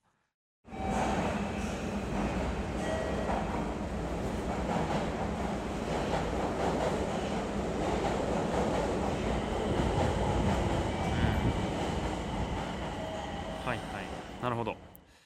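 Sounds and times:
rumbling subway train noise at Nagoya Station on the Higashiyama Line: 0.7 - 15.0
speech: 14.4 - 14.8.

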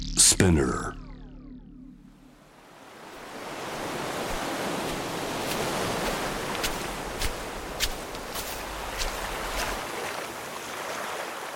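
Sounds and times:
speech: 0.2 - 1.0
surf washing onto a beach: 3.1 - 11.5
crisp splashes: 4.2 - 10.4.

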